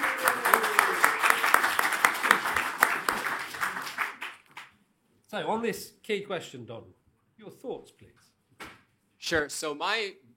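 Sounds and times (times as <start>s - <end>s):
audience at a public debate event applauding: 0.0s - 4.7s
speech: 5.4s - 8.3s, 9.3s - 10.3s.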